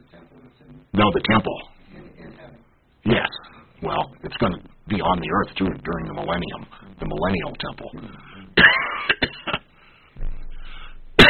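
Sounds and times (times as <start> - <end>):
speech: 0.5 - 1.7, 4.4 - 8.3
person coughing: 8.0 - 9.6, 10.7 - 11.2.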